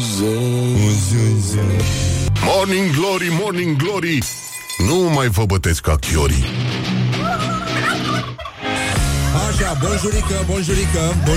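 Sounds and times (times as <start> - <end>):
speech: 0.2 - 6.7, 9.6 - 11.3
laughter: 7.0 - 11.3
person imitating a turkey gobbling: 7.2 - 8.6.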